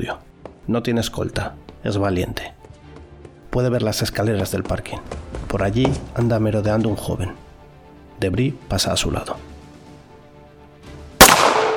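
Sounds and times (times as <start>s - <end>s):
speech: 0.0s - 2.6s, 3.6s - 7.4s, 8.2s - 9.5s
loud gunshot from a fatal shooting in the Netherlands: 11.2s - 11.7s.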